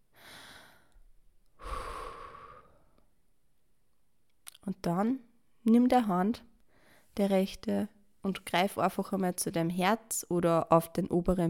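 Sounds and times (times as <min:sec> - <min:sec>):
deep breathing in and out during a relaxation exercise: 0:00.1 - 0:03.1, 0:06.7 - 0:07.2
speech: 0:04.7 - 0:06.5, 0:07.2 - 0:11.4.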